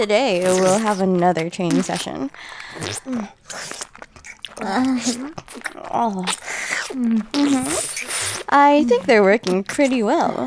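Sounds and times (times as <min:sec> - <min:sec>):
speech: 0:00.0 - 0:03.8, 0:04.6 - 0:10.4
wet slurping and sucking on a popsicle: 0:00.0 - 0:10.4.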